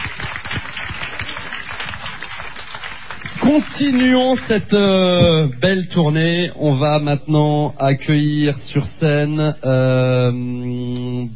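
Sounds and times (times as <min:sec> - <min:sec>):
crowd applauding: 0:00.0 - 0:04.7
speech: 0:03.5 - 0:11.3.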